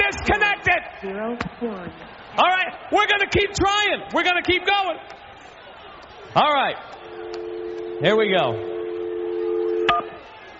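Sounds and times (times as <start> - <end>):
speech: 1.1 - 5.2, 6.3 - 7.4, 8.0 - 8.7
telephone dial tone: 7.0 - 10.2.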